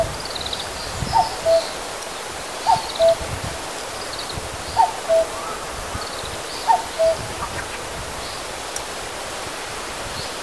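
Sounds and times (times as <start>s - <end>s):
common cuckoo calling: 1.1s - 1.8s, 2.6s - 7.9s.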